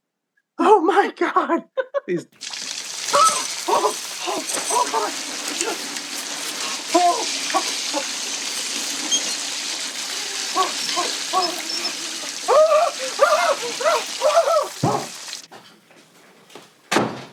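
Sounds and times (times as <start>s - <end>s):
person exclaiming and talking: 0.6s - 2.4s, 3.1s - 5.8s, 6.7s - 8.1s, 10.5s - 14.8s
speech: 1.0s - 2.6s, 3.8s - 6.0s, 10.6s - 15.0s
cold shower spray running into a tub: 2.4s - 15.5s.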